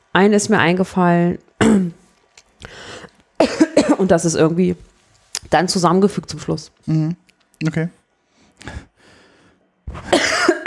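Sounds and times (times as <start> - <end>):
speech: 0.2 - 2.0, 2.7 - 8.0, 8.6 - 8.9
person coughing: 1.6 - 2.0, 3.4 - 4.1, 9.9 - 10.6.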